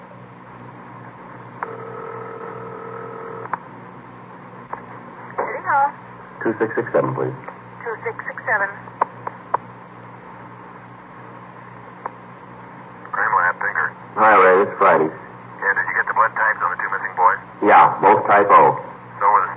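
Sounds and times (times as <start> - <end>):
telephone dial tone: 1.6 - 3.5
voice talking: 6.4 - 7.5, 13.1 - 19.5.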